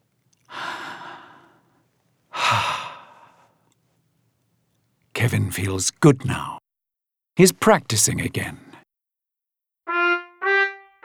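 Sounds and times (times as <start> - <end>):
person yawning with breathy exhalations and a low groan: 2.3 - 3.4
speech: 5.2 - 6.6, 7.4 - 8.6.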